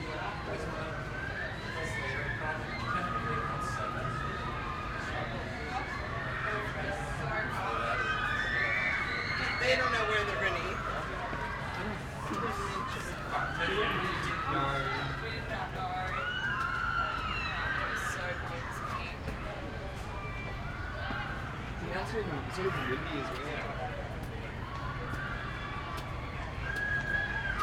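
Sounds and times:
distant children screaming at an amusement park near the sea: 0.0s - 27.6s
people walking on a busy street walkway: 9.5s - 27.6s.

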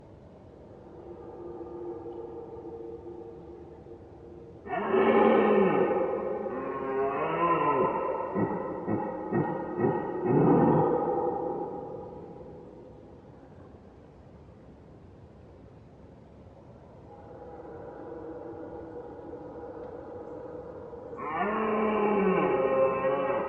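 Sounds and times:
red deer roaring: 4.6s - 12.4s, 21.1s - 23.4s.

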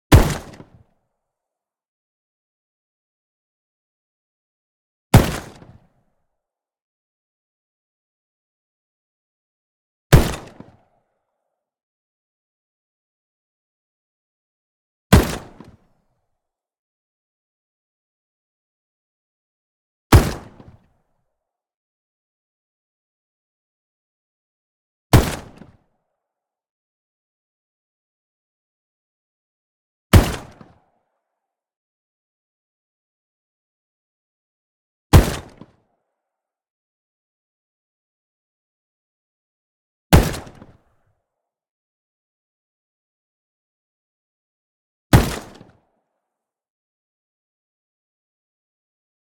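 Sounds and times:
Saiga 12 shotgun single shot: 0.1s - 0.8s, 5.2s - 5.8s, 10.1s - 10.7s, 15.1s - 15.8s, 20.1s - 20.8s, 25.1s - 25.8s, 30.1s - 30.8s, 35.1s - 35.7s, 40.1s - 40.8s, 45.1s - 45.7s.

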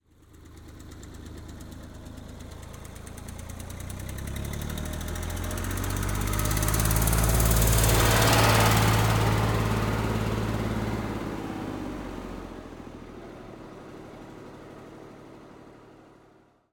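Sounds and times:
1962 Eicher Tiger II tractor passing by fast at constant speed: 0.1s - 16.5s.

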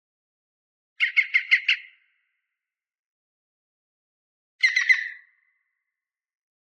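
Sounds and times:
several European green woodpeckers calling far away on a lakeshore in Norwegian forests: 1.0s - 2.0s, 4.6s - 5.3s.

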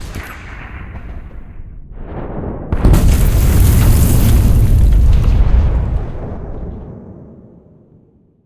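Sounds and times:
designed explosion whoosh: 1.6s - 7.2s.

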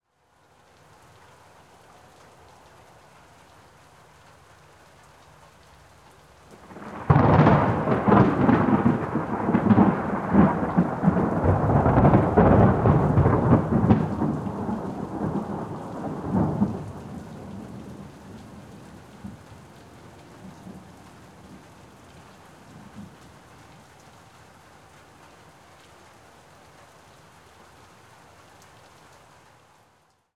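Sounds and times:
thunder crack: 6.7s - 18.6s.

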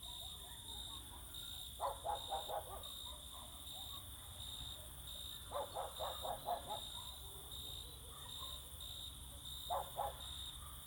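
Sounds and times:
dogs barking in summer fields: 0.0s - 4.3s, 5.5s - 8.8s, 9.7s - 10.8s
chorus of crickets singing in summer fields: 0.0s - 10.8s.

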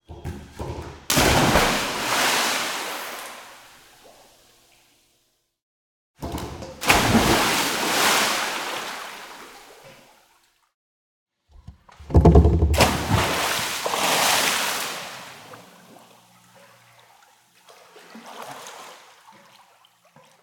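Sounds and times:
splash of a dive into water: 1.1s - 3.6s, 6.8s - 9.8s, 12.7s - 15.6s.

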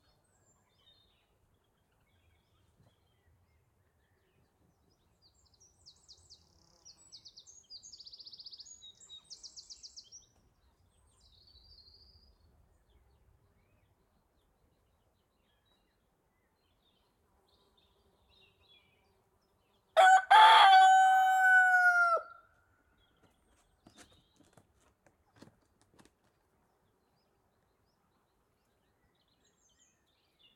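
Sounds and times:
rooster crowing in a countryside field: 20.0s - 22.4s.

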